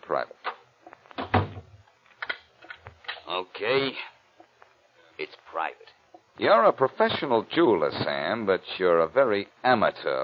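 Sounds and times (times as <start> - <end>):
speech: 0.1 - 0.4, 3.3 - 4.1, 5.2 - 10.2
softer knocks and clicks of a settling door: 1.2 - 1.7
door swinging shut with a solid thud: 1.2 - 1.8.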